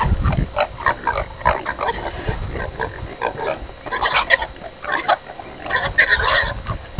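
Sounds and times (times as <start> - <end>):
pigs: 0.0 - 6.9.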